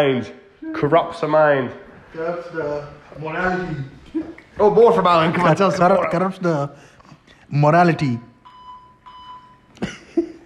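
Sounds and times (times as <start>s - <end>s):
speech: 0.0s - 6.9s, 7.5s - 8.3s
high-pitched censor bleep covering a swear word: 8.4s - 9.7s.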